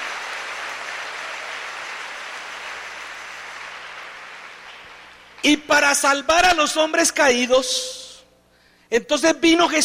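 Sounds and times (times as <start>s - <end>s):
audience of a sermon applauding: 0.0s - 5.4s
speech: 5.4s - 8.0s, 8.9s - 9.8s.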